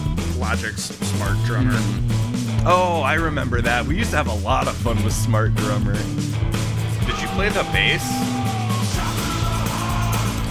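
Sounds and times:
dense driving band mix with heavy bass and cymbal wash: 0:00.0 - 0:10.4
speech: 0:00.4 - 0:08.5
loud sustained scream in a music track: 0:07.2 - 0:09.4.

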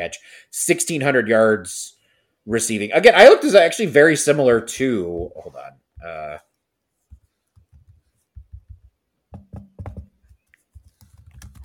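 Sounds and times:
speech: 0:00.0 - 0:06.5
computer keyboard typing: 0:09.8 - 0:11.6.

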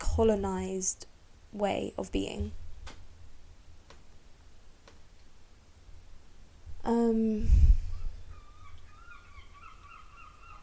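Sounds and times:
speech: 0:00.2 - 0:02.6, 0:06.9 - 0:07.6
seagull calling: 0:08.0 - 0:10.6.

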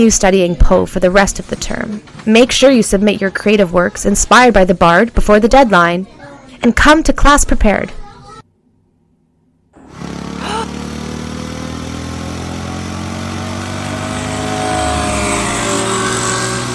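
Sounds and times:
speech: 0:00.0 - 0:08.0
vehicle engine roaring while driving through streets with hurricane debris: 0:09.8 - 0:16.7.

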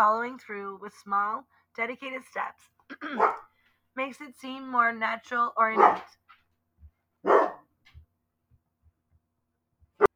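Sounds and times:
speech: 0:00.0 - 0:06.2
dog barking: 0:03.2 - 0:03.5, 0:05.8 - 0:06.1, 0:07.2 - 0:07.6.

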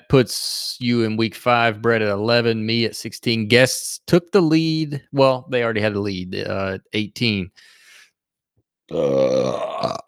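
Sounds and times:
speech: 0:00.1 - 0:07.8, 0:08.9 - 0:10.0
loud burp: 0:08.9 - 0:10.0.

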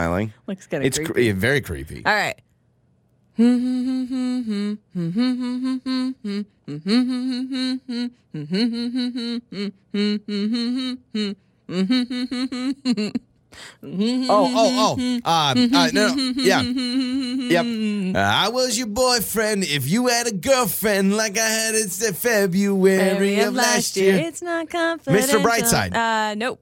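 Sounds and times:
speech: 0:00.0 - 0:02.5, 0:03.4 - 0:26.6
person humming a song melody: 0:03.4 - 0:18.4, 0:22.8 - 0:24.3, 0:25.1 - 0:25.9.

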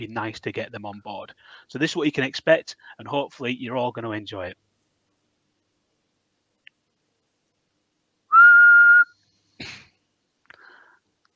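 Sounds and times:
speech: 0:00.0 - 0:04.6
person whistling one clear steady note: 0:08.3 - 0:09.1.

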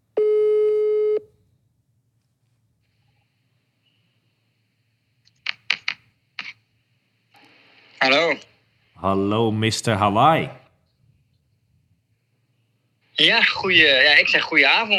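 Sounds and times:
ringing tone of an outgoing phone call: 0:00.2 - 0:01.2
speech: 0:08.0 - 0:10.6, 0:13.2 - 0:14.9.

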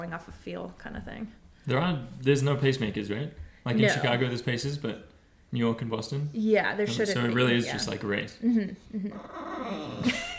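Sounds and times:
speech: 0:00.0 - 0:10.3
dog growling and whining: 0:09.0 - 0:10.3.

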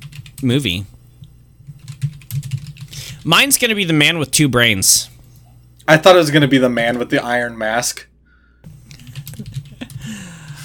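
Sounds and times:
rapid typing on a computer keyboard: 0:00.0 - 0:00.4, 0:01.8 - 0:02.9, 0:09.1 - 0:10.6
steady low hum: 0:00.0 - 0:10.6
speech: 0:00.4 - 0:01.0, 0:03.2 - 0:05.1, 0:05.9 - 0:08.1.

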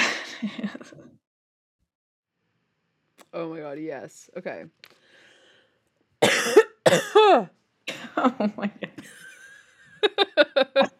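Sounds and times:
speech: 0:00.4 - 0:01.2, 0:03.3 - 0:05.0, 0:06.4 - 0:09.2, 0:10.1 - 0:10.9
harsh coughs with throaty rasp: 0:06.2 - 0:08.2
laughter: 0:08.2 - 0:10.9.

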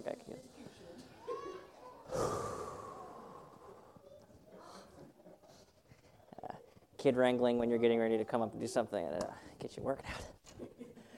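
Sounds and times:
choir members at practice taking a deep breath together: 0:02.0 - 0:05.8
speech: 0:07.0 - 0:10.3.

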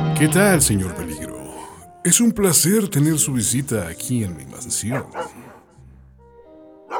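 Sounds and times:
speech: 0:00.2 - 0:01.3, 0:02.0 - 0:05.5
dogs barking: 0:04.6 - 0:06.9.

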